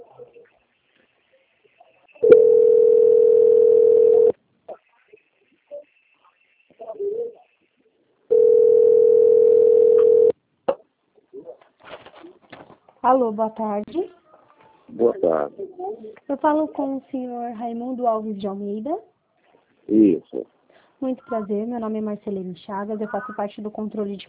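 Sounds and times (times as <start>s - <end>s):
telephone line tones while a call is being transferred: 2.2s - 4.3s, 8.3s - 10.3s
speech: 13.1s - 13.9s, 15.2s - 19.1s, 19.9s - 24.2s.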